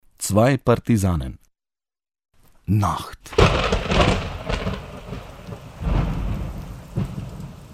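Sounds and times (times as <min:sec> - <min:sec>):
speech: 0:00.3 - 0:01.4, 0:02.7 - 0:03.4
low rumbles of thunder: 0:03.3 - 0:07.7
steady rain pattering on a surface: 0:03.3 - 0:07.7.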